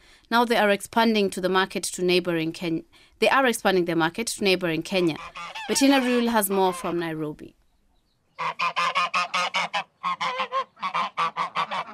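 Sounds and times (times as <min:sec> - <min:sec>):
speech: 0:00.3 - 0:07.6, 0:08.4 - 0:08.9
gaggle of geese honking at a countryside property near Nairobi Kenya: 0:04.9 - 0:07.0, 0:08.4 - 0:11.9.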